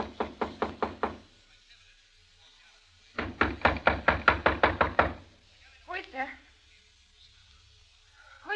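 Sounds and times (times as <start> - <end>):
rapid knocking on a hotel room door: 0.0 - 1.3, 3.2 - 5.3.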